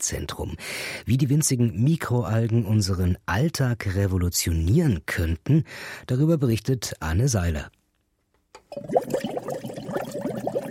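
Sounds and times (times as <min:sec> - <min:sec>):
speech: 0:00.0 - 0:07.8, 0:08.7 - 0:09.3
green water rushing through a pipe system in an algae lab: 0:08.7 - 0:10.7.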